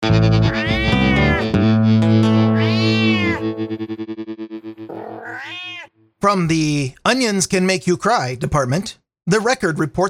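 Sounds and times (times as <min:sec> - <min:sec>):
cat meowing: 0:00.4 - 0:01.5, 0:02.3 - 0:03.4, 0:04.9 - 0:06.0
pulsing electronic echo: 0:03.4 - 0:05.0
speech: 0:06.2 - 0:10.0.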